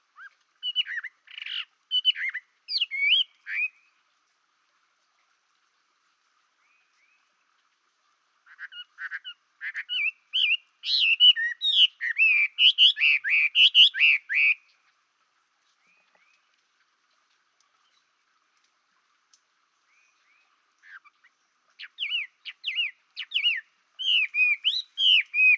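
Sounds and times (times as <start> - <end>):
Chinese Hwamei singing: 0.2 - 4.0, 8.5 - 15.0, 17.8 - 18.2, 19.8 - 25.5.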